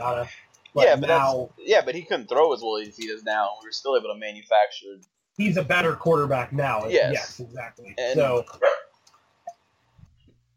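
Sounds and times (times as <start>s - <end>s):
speech: 0.0s - 8.8s
dog barking: 8.6s - 8.9s.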